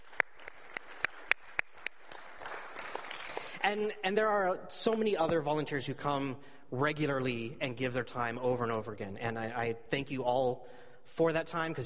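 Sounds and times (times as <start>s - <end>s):
audience applause: 0.0s - 3.6s
speech: 3.6s - 11.8s.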